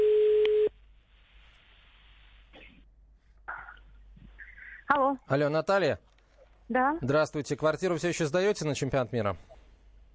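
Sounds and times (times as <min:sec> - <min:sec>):
telephone ringback tone on an unanswered call: 0:00.0 - 0:00.7
speech: 0:04.9 - 0:06.1, 0:06.7 - 0:09.5.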